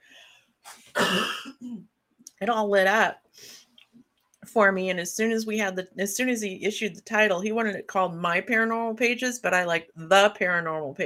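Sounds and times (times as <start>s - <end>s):
person coughing: 0.7s - 1.8s
speech: 1.1s - 3.6s, 4.5s - 11.0s.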